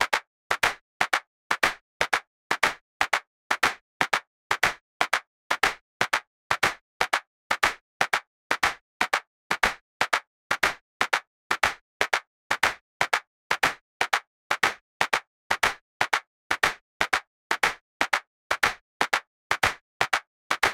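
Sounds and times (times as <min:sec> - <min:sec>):
rhythmic clapping: 0:00.0 - 0:20.7.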